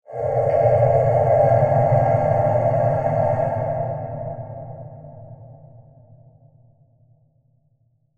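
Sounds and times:
mysterious breathy whoosh transition: 0:00.1 - 0:05.5.

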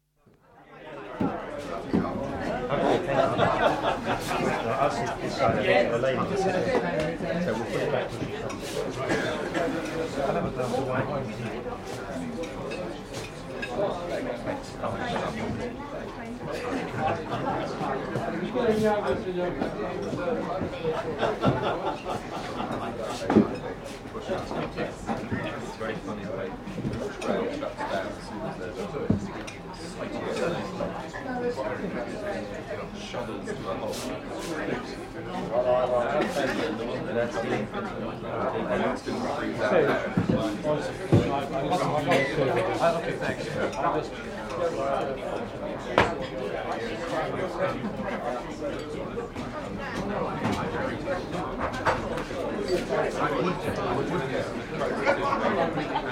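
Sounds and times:
moderately busy Italian restaurant ambience in London West End: 0:00.0 - 0:56.1
laughter: 0:02.7 - 0:05.0, 0:16.5 - 0:18.0, 0:20.8 - 0:23.2, 0:54.7 - 0:56.1.

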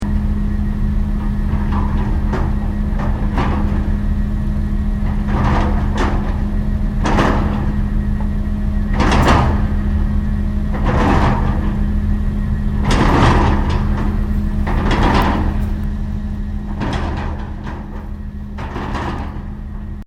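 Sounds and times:
construction drilling rig setup at Japanese construction drill site: 0:00.0 - 0:20.0.

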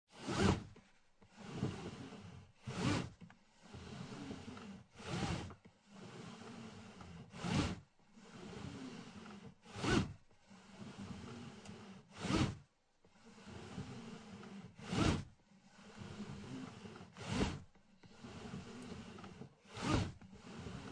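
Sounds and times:
seatbelt sliding in 1996 Acura Integra car interior: 0:00.2 - 0:20.9.

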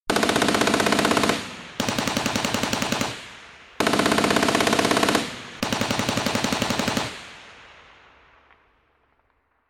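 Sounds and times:
pimple and turret mounted general purpose machine guns firing in turn: 0:00.1 - 0:07.4.

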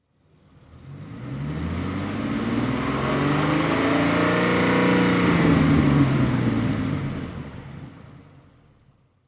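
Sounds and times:
Ford GT 500 KR Mustang engine revving: 0:00.4 - 0:07.8.

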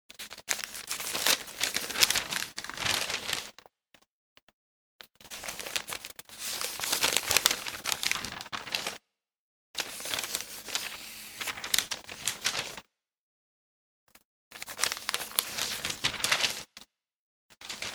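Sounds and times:
pages of a large newspaper turning and rustling: 0:00.2 - 0:03.5, 0:05.3 - 0:09.0, 0:09.8 - 0:12.8, 0:14.6 - 0:16.7, 0:17.7 - 0:17.9.

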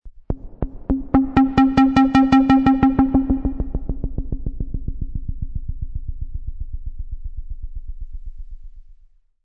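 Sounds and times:
low stuttering beep: 0:00.9 - 0:04.2.

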